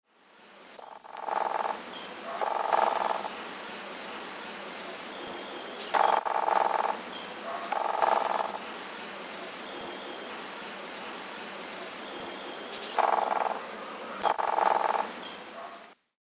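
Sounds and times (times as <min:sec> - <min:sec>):
Black-rumped Flameback drumming: 0:00.8 - 0:03.4, 0:04.9 - 0:08.6, 0:12.9 - 0:15.4.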